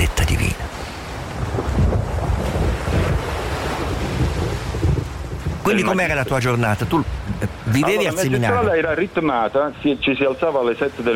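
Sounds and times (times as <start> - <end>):
rough sea waves crashing: 0.0 - 11.1
strong wind buffeting the microphone: 0.6 - 7.7
speech: 5.7 - 11.1.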